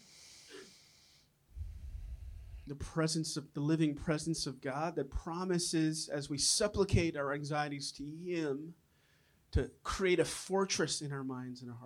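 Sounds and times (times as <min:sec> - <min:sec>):
deep inhale during a guided breathing meditation: 0:00.0 - 0:02.7
low rumble: 0:01.6 - 0:02.7
speech: 0:02.7 - 0:08.8, 0:09.5 - 0:11.8.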